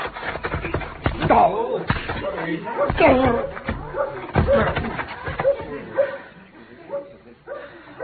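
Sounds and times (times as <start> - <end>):
heavy smacking blows in a barehanded fistfight: 0.0 - 5.9.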